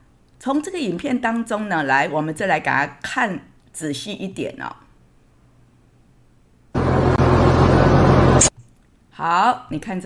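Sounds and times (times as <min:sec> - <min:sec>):
speech: 0:00.4 - 0:04.8, 0:09.2 - 0:10.0
large truck engine roaring as the truck approaches: 0:06.8 - 0:08.5.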